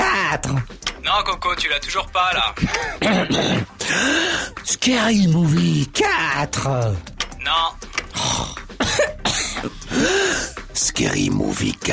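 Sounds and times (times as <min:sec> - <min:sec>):
speech: 0:00.3 - 0:11.9
person clearing throat with rasping bursts and short voiced grunts: 0:02.9 - 0:03.9, 0:08.2 - 0:10.0.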